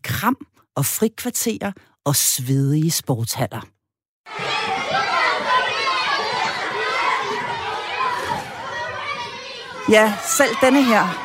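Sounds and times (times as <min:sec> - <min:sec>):
speech: 0:00.2 - 0:05.0, 0:09.9 - 0:11.2
many children chattering and shouting in a school class: 0:04.3 - 0:11.2.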